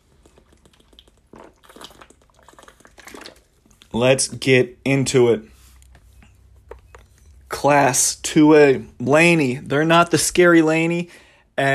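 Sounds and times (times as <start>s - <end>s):
quiet slurps and swallows of someone sipping water: 0.0s - 4.0s, 5.5s - 7.5s
speech: 3.9s - 5.5s, 7.6s - 11.7s.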